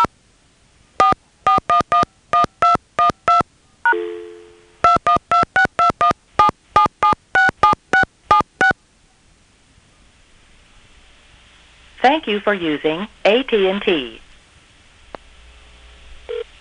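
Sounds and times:
phone number dialed with touch tones on an AT&T line: 0:01.0 - 0:08.8
speech: 0:12.0 - 0:14.2.

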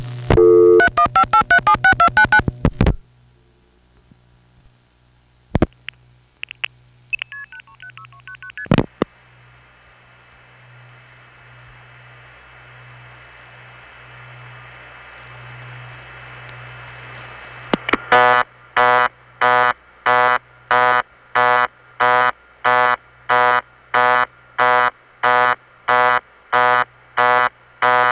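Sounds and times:
low steady hum on the telephone line: 0:00.0 - 0:28.0
telephone busy signal from a step-by-step switching office: 0:00.4 - 0:02.4, 0:07.2 - 0:08.7, 0:18.1 - 0:28.0.

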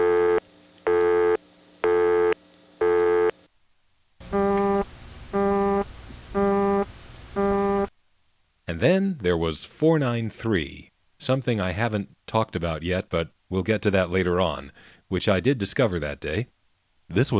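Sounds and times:
exotic telephone busy signal on the 670 prefix: 0:00.0 - 0:03.3, 0:04.3 - 0:07.9
steady low hum: 0:00.0 - 0:08.6
speech: 0:08.7 - 0:17.3.

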